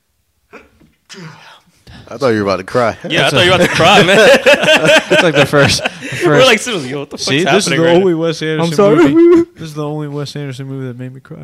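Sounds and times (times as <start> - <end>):
sneeze: 0.5 - 1.4
speech: 1.1 - 1.5, 2.1 - 11.4
laughter: 3.0 - 7.8.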